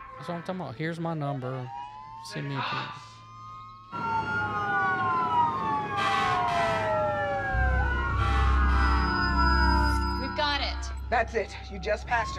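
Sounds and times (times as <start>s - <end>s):
fire truck siren wailing while passing: 0.0s - 12.3s
speech: 0.2s - 3.1s, 3.9s - 4.3s, 11.1s - 12.3s
fire truck engine rumbling: 4.0s - 12.3s
fire truck horn blasts: 8.2s - 11.4s.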